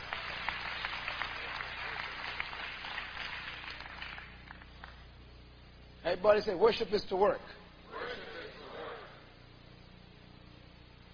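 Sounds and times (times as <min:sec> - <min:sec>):
congregation clapping hands: 0:00.0 - 0:05.1
speech: 0:06.0 - 0:07.6
murmuring voices: 0:07.9 - 0:09.4.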